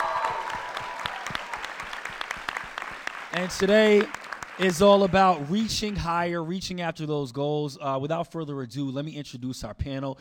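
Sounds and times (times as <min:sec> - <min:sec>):
crowd applauding: 0:00.0 - 0:06.4
speech: 0:03.4 - 0:10.1.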